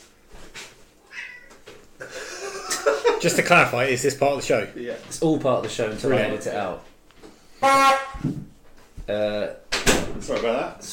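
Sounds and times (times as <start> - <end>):
pet cat meowing in a house: 1.0 - 1.6
laughter: 2.0 - 3.5
speech: 3.2 - 6.9, 7.6 - 8.2, 9.1 - 9.6, 10.2 - 10.9.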